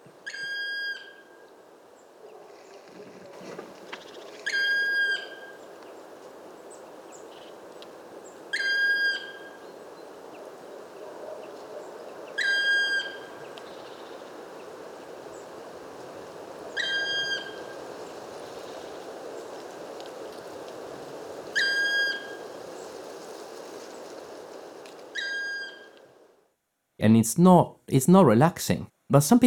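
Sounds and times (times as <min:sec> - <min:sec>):
black woodpecker squeaky piercing call: 0:00.2 - 0:01.3, 0:04.4 - 0:05.6, 0:08.5 - 0:09.6, 0:12.4 - 0:13.3, 0:16.8 - 0:17.7, 0:21.6 - 0:22.4, 0:25.1 - 0:26.0
speech: 0:27.0 - 0:29.4.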